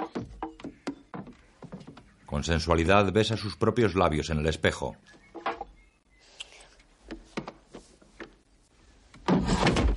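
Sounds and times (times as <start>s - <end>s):
dull wooden knocks and clunks of a door being barred shut: 0.0s - 2.3s, 5.1s - 5.8s, 7.0s - 8.4s, 9.1s - 9.9s
speech: 2.3s - 5.2s.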